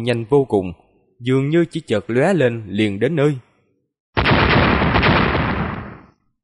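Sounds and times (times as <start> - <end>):
speech: 0.0 - 3.5
explosive cracks from electric lightning bolts striking: 4.2 - 6.2.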